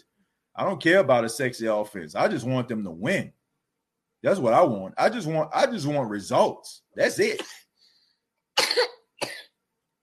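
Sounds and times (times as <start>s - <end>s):
speech: 0.6s - 3.4s, 4.2s - 7.6s, 8.6s - 9.3s
coughing: 7.2s - 7.7s, 8.6s - 9.6s.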